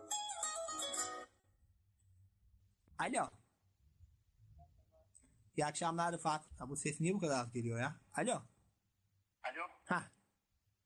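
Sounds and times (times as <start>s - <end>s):
phone ringtone for an incoming call: 0.0s - 1.3s
speech: 3.0s - 3.4s, 5.6s - 8.5s, 9.9s - 10.2s.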